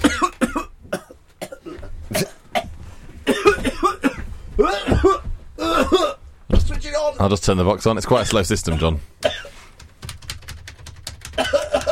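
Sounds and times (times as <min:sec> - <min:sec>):
person coughing harshly in a coughing fit: 0:00.0 - 0:06.2, 0:08.7 - 0:09.6, 0:11.4 - 0:11.8
speech: 0:07.2 - 0:09.1.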